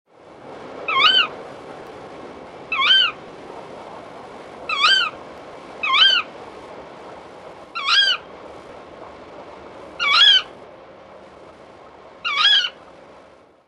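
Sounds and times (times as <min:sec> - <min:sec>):
tawny owl calling: 0:00.9 - 0:01.4, 0:02.7 - 0:03.2, 0:04.7 - 0:05.2, 0:05.8 - 0:06.3, 0:07.7 - 0:08.3, 0:10.0 - 0:10.5, 0:12.2 - 0:12.8.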